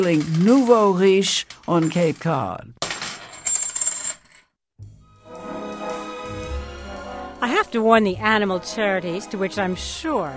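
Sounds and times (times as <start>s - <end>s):
speech: 0.0s - 2.8s, 7.4s - 10.3s
coins clinking: 0.0s - 4.5s.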